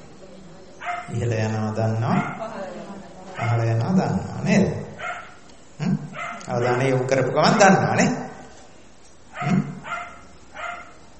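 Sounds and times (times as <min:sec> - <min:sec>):
dog barking: 0:00.8 - 0:01.2, 0:02.1 - 0:02.5, 0:03.4 - 0:03.7, 0:05.0 - 0:05.4, 0:06.1 - 0:07.0, 0:09.3 - 0:11.0
speech: 0:01.1 - 0:02.4, 0:03.5 - 0:04.8, 0:06.5 - 0:08.2.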